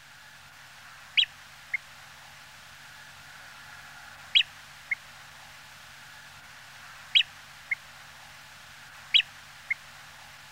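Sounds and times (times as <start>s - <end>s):
background hiss: 0.0s - 10.5s
Nordmann's greenshank Tringa guttifer calls: 4.3s - 5.0s, 7.1s - 7.8s.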